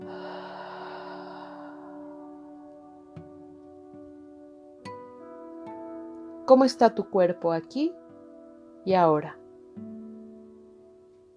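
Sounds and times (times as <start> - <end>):
deep breathing exhale during a guided breathing exercise: 0.0 - 2.8
sustained musical drone: 0.0 - 4.4
speech: 6.5 - 8.0, 8.8 - 9.9.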